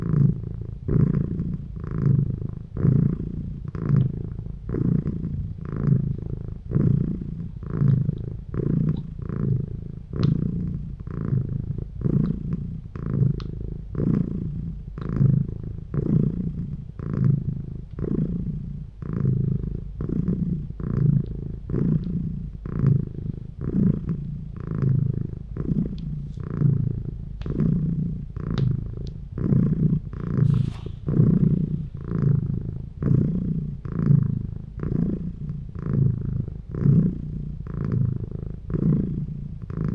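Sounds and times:
cat purring: 0.0s - 39.9s
faint soft clicks: 3.9s - 4.2s, 10.2s - 10.5s, 13.3s - 13.6s, 22.0s - 22.2s, 25.9s - 26.5s, 27.4s - 27.7s, 28.5s - 29.2s.

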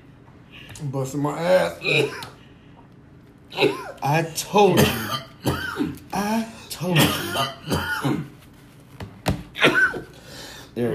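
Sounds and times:
speech: 0.8s - 2.4s, 3.6s - 5.3s, 6.2s - 8.3s, 10.8s - 10.9s
person clearing throat: 1.8s - 2.4s, 3.5s - 4.0s, 4.7s - 8.3s, 9.6s - 10.2s
person coughing: 1.8s - 2.4s, 3.5s - 4.0s, 4.7s - 8.4s, 9.6s - 10.2s.

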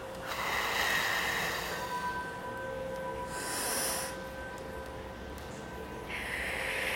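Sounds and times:
faint steady ringing tones: 0.0s - 6.9s
deep breath drawn and slowly exhaled from the diaphragm during guided meditation: 0.2s - 2.4s, 3.3s - 4.3s, 6.1s - 6.9s.

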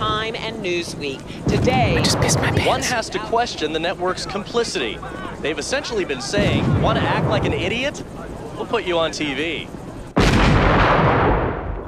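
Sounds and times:
low noise: 0.0s - 10.2s
speech: 0.3s - 9.8s
gunshot: 10.2s - 11.8s.

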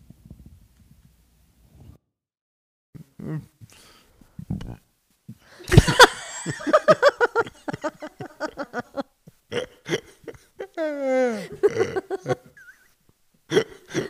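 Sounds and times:
laughter: 5.6s - 9.0s, 9.8s - 12.8s
person belching: 11.5s - 12.3s, 13.5s - 14.0s.

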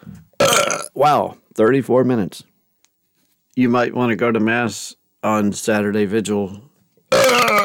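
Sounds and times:
loud drawn-out burp: 0.4s - 0.9s, 7.1s - 7.6s
speech: 1.0s - 2.5s, 3.6s - 6.7s.

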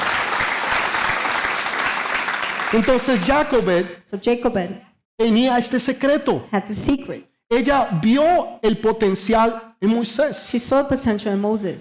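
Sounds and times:
audience applauding: 0.0s - 3.6s
speech: 2.7s - 11.8s.

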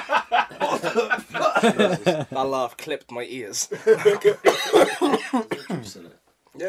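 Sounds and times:
laughter: 0.0s - 2.4s, 3.7s - 5.2s
speech: 0.8s - 6.6s
person coughing in a rapid fit: 4.4s - 6.0s.

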